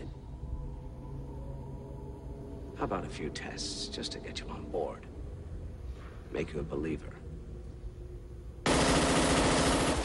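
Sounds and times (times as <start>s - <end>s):
speech: 2.8s - 5.1s, 6.3s - 7.2s
automatic gunfire at a silver ball target on a firing range: 8.7s - 10.0s.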